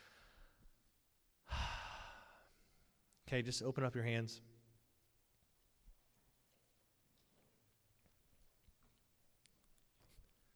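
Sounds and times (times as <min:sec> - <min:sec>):
people at a group prayer gathering exhaling a deep breath: 0:01.5 - 0:02.5
speech: 0:03.3 - 0:04.6.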